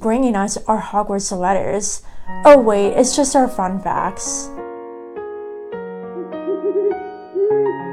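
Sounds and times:
speech: 0:00.0 - 0:04.6
owl hooting: 0:06.2 - 0:07.9.

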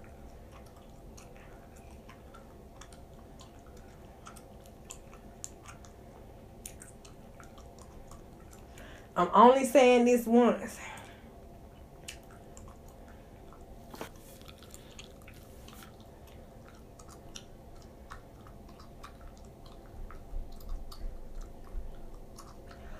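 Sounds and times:
wet chewing gum smacks and clicks: 0:00.0 - 0:09.1, 0:11.0 - 0:22.9
low hum: 0:00.0 - 0:22.9
speech: 0:09.2 - 0:10.9.

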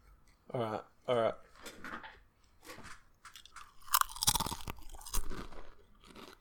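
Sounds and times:
speech: 0:00.5 - 0:01.3
crisp crunching bite and loud wet chewing of food: 0:03.3 - 0:06.3.

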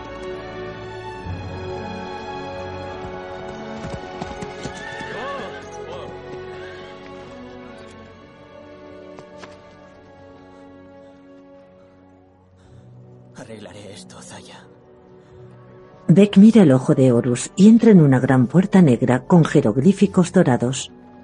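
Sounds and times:
hooves of a horse-drawn chariot: 0:01.9 - 0:11.9
horses neighing: 0:04.0 - 0:07.4
speech: 0:13.5 - 0:14.8, 0:16.1 - 0:21.0.

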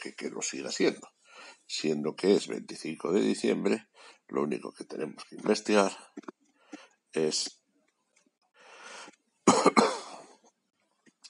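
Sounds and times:
speech: 0:00.0 - 0:06.4, 0:07.1 - 0:07.6
person coughing: 0:09.5 - 0:10.4.

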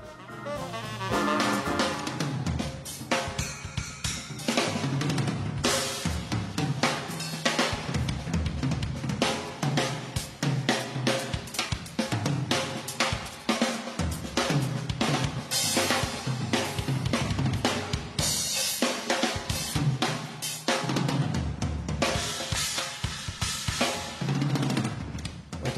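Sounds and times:
live drum kit solo on snare toms and cymbals: 0:00.0 - 0:25.7.

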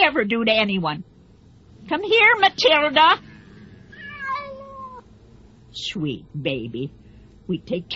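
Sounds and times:
low hum: 0:00.0 - 0:07.9
speech: 0:00.1 - 0:01.1, 0:01.8 - 0:03.3, 0:05.8 - 0:07.9
cat meowing: 0:03.9 - 0:05.1.

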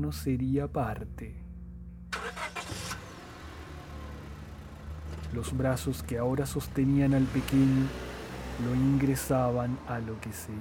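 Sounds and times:
speech: 0:00.0 - 0:01.4, 0:05.3 - 0:10.5
large white pickup truck starting and driving away: 0:02.1 - 0:10.5.

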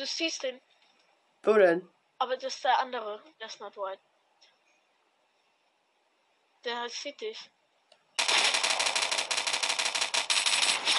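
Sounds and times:
speech: 0:00.0 - 0:00.7, 0:01.4 - 0:04.1, 0:06.6 - 0:07.6
video game automatic gunfire: 0:08.2 - 0:10.9.

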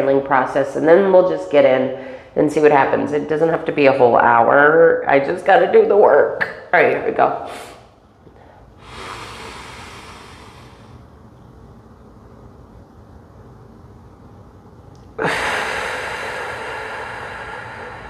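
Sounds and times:
speech: 0:00.0 - 0:07.7
deep breaths close to the microphone: 0:01.9 - 0:02.4, 0:07.5 - 0:11.2, 0:15.2 - 0:18.0.

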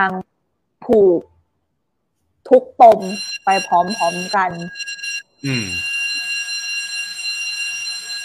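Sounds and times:
speech: 0:00.0 - 0:01.3, 0:02.4 - 0:05.9
building fire alarm ringing: 0:02.8 - 0:08.2.

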